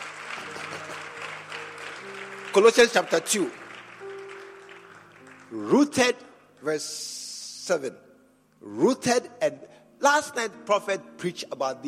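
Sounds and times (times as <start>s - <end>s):
congregation clapping: 0.0s - 6.2s
speech: 2.6s - 3.6s, 5.5s - 11.8s.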